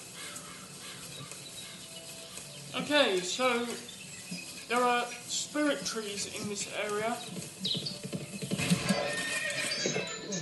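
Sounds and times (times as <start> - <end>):
rustling: 0.0 - 9.9
faint horse hoof clops: 0.0 - 10.0
speech: 2.8 - 4.0, 4.7 - 7.8
horse whinnying loudly and shakily: 8.4 - 10.4.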